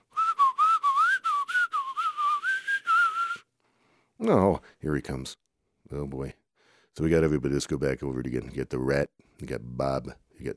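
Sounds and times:
person whistling to call an animal: 0.0s - 3.5s
speech: 4.2s - 10.5s.

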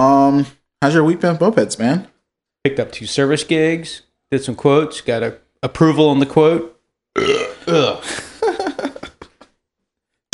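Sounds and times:
speech: 0.0s - 8.3s
long loud burp after drinking sparkling water: 7.1s - 8.0s
laughter: 7.7s - 9.6s.

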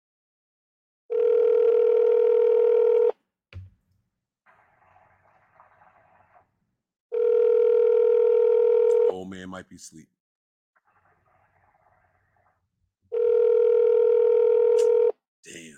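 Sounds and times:
electronic telephone ringback tone: 1.1s - 3.1s, 7.1s - 9.1s, 13.1s - 15.1s
speech: 9.5s - 10.2s.

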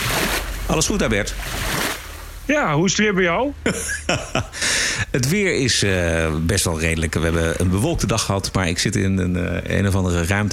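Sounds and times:
sea waves: 0.0s - 2.6s
speech: 0.7s - 1.9s, 2.5s - 10.5s
laughter: 3.6s - 5.3s.

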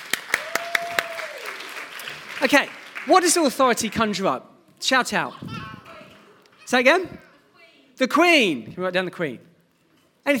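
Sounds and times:
sharp hand claps: 0.0s - 3.1s
diffuse patter of applause in a room: 0.0s - 4.3s
speech: 2.4s - 5.5s, 6.7s - 7.2s, 8.0s - 9.5s.

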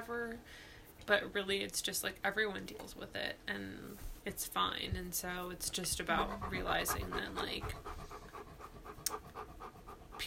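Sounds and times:
speech: 0.0s - 8.0s
dog panting: 5.7s - 10.2s.

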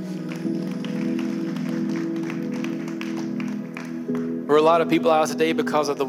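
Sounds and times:
audience clapping hands in applause: 0.0s - 4.4s
sustained organ or keyboard chords: 0.0s - 6.0s
speech: 4.5s - 6.0s.

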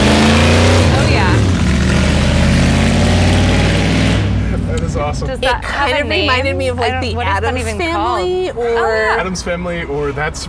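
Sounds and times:
motorbike driving past: 0.0s - 5.2s
speech: 5.2s - 10.4s.

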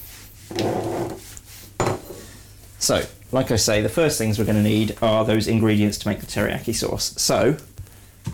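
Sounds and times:
regular cloth rubbing over a wooden chopping board to dry it: 0.0s - 2.4s, 3.7s - 6.6s
speech: 2.9s - 7.7s.

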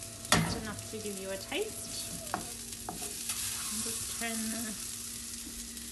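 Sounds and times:
mealworms frying in a hot frying pan: 0.0s - 5.9s
speech: 0.7s - 3.1s, 3.7s - 4.9s
stirring scrapes in a frying pan: 1.7s - 4.4s.

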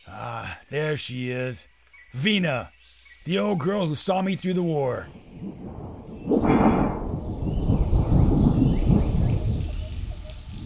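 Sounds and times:
speech: 0.1s - 5.6s, 6.3s - 6.8s
deep roll of thunder rumbling: 5.1s - 10.6s
steady heavy downpour hissing and drumming: 5.6s - 10.6s.

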